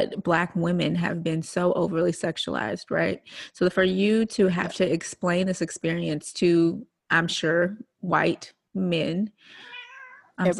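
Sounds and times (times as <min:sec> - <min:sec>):
speech: 0:00.0 - 0:09.7, 0:10.4 - 0:10.5
pet cat meowing: 0:09.6 - 0:10.4.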